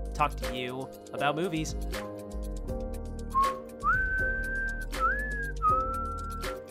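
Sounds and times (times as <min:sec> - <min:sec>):
speech: 0:00.2 - 0:02.1
person whistling a short melodic movie tune: 0:03.3 - 0:06.6.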